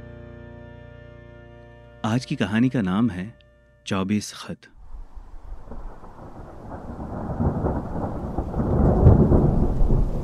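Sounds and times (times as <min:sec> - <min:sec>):
speech: 0:02.0 - 0:04.8
low rolling thunder: 0:04.8 - 0:10.2
rain pattering on window glass: 0:05.2 - 0:10.2.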